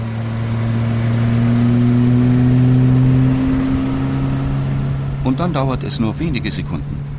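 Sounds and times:
speedboat engine roaring on Lake Constance: 0.0s - 7.1s
speech: 5.4s - 7.0s.

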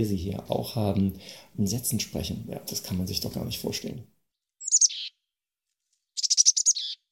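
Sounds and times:
speech: 0.0s - 4.1s
tit calls combining two call variants: 4.6s - 5.2s, 6.2s - 7.1s.

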